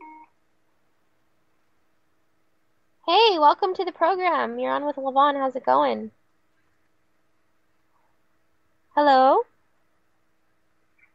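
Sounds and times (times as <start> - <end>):
cell phone beep as a call is answered: 0.0 - 0.3
faint hiss: 0.0 - 11.1
speech: 3.1 - 6.2, 9.0 - 9.5.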